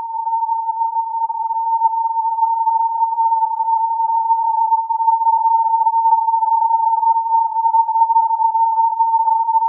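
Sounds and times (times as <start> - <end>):
filtered morse code on 14100 kHz: 0.1 - 9.6.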